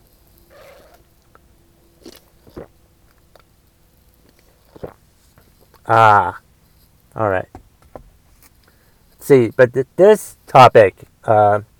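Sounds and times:
person sipping coffee: 2.0 - 3.5, 4.2 - 5.9
speech: 5.9 - 6.4, 7.2 - 7.6, 9.3 - 11.7.

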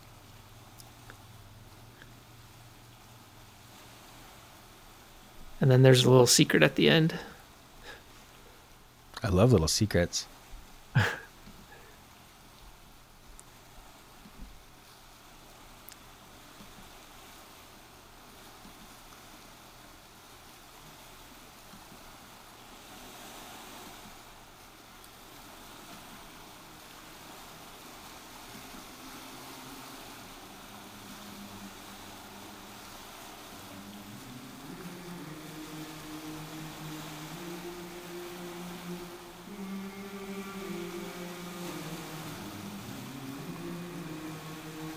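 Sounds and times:
ocean surf: 0.0 - 44.9
speech: 5.6 - 7.3, 9.2 - 10.4
eerie wavering voice-like tones: 28.6 - 44.9.

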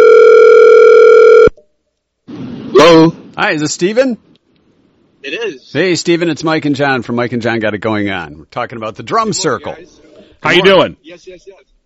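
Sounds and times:
telephone dial tone after dialing: 0.0 - 1.6
speech: 3.4 - 4.3, 5.2 - 11.8.

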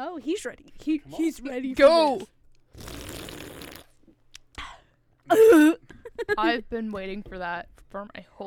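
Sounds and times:
speech: 0.2 - 2.9, 5.3 - 8.4
loud slurping: 2.7 - 3.9.

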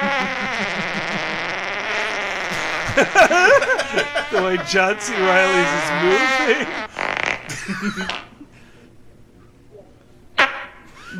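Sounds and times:
laughter: 0.0 - 1.8, 2.5 - 6.9, 7.5 - 8.6, 11.0 - 11.1
fart: 0.0 - 8.3, 10.4 - 10.9
speech: 3.0 - 6.9, 7.7 - 8.2.

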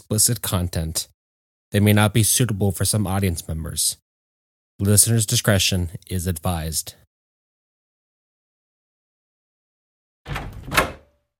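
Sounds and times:
speech: 0.0 - 4.0, 4.8 - 7.0
wooden hut door opening: 10.3 - 11.2.

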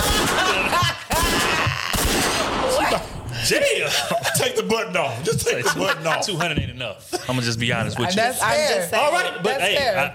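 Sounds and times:
laughter: 0.0 - 2.0, 2.6 - 8.4
gunshot sound effects: 0.0 - 3.2
speech: 3.5 - 10.1.

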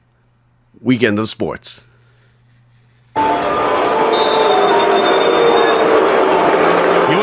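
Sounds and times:
speech: 0.7 - 1.9
huge stadium crowd booing after a pick six: 3.2 - 7.2.

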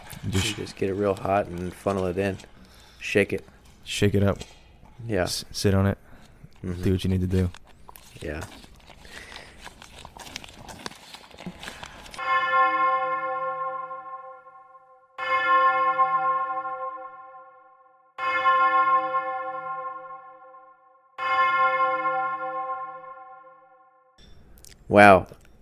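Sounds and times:
speech: 0.2 - 6.0, 6.6 - 7.6, 8.2 - 8.6, 24.9 - 25.4
bell ringing to end an oatmeal eating contest: 12.2 - 24.5.

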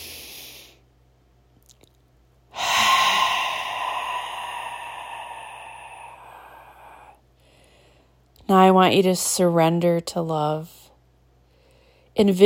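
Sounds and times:
deep breath during a guided meditation: 0.0 - 0.8, 2.5 - 8.2, 11.4 - 12.2
speech: 8.5 - 10.8, 12.2 - 12.4.

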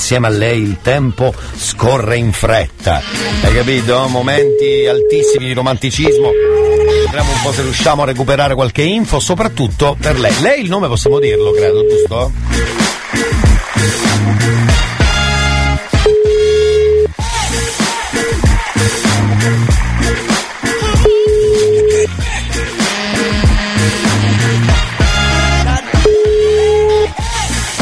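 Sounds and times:
loud busy music: 0.0 - 27.7
speech: 0.1 - 14.9
phone ringback tone: 3.1 - 7.2, 11.1 - 12.2, 16.0 - 17.2, 20.9 - 22.2, 26.0 - 27.2.

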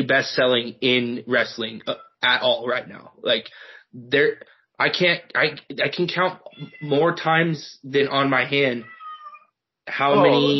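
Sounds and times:
speech: 0.0 - 9.0, 9.9 - 10.5
pet cat meowing: 6.4 - 7.0, 8.8 - 9.5.

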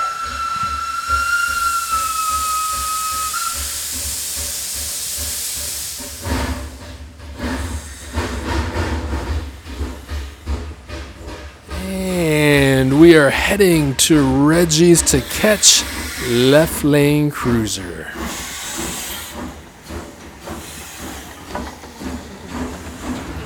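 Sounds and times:
train steam whistle: 0.0 - 5.3
train steam hissing: 0.0 - 13.4, 14.1 - 16.8, 17.4 - 23.4
steam train chugging and clattering getting underway: 0.0 - 23.4
speech: 13.1 - 18.4.

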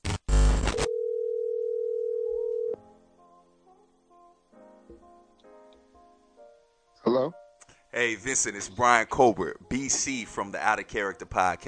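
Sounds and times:
burst of broadband noise: 0.0 - 0.9
telephone dial tone: 0.7 - 2.8
speech: 7.1 - 7.4, 8.0 - 11.6.

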